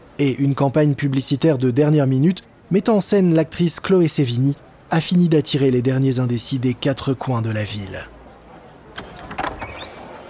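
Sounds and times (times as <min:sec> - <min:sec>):
low murmur: 0:00.0 - 0:10.2
speech: 0:00.2 - 0:08.2
store doors clunking and knocking: 0:08.9 - 0:10.2.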